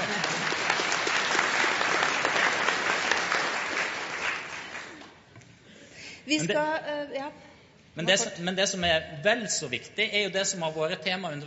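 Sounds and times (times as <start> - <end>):
audience at a debate applauding: 0.0 - 5.2
speech: 6.3 - 11.4.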